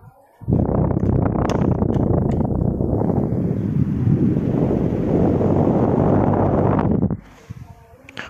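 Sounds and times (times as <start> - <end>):
electric fan whirring: 0.0 - 8.2.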